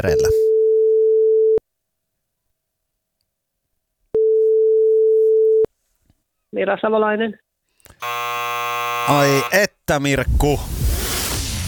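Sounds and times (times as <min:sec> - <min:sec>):
speech: 0:00.0 - 0:00.5, 0:06.5 - 0:08.2, 0:09.1 - 0:10.8
telephone ringing tone on an outgoing call: 0:00.1 - 0:01.6, 0:04.2 - 0:05.7, 0:08.0 - 0:09.5.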